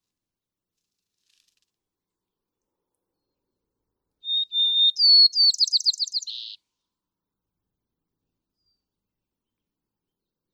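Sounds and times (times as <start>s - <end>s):
White-crowned sparrow song: 4.2s - 6.6s.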